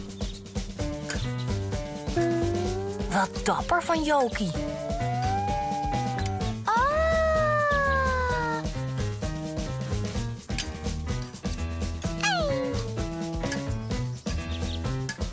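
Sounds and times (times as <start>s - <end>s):
steady music with a light rhythmic beat: 0.0s - 15.3s
speech: 3.2s - 4.9s
cat meowing: 4.6s - 8.6s, 12.2s - 12.8s.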